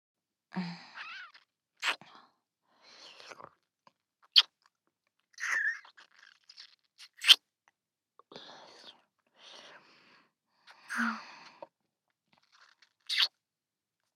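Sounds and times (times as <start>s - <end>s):
quiet breathy sounds: 0.5s - 1.3s, 8.2s - 11.8s
soft wet kissing and lip smacks: 4.3s - 4.5s, 7.0s - 7.4s, 12.6s - 13.3s.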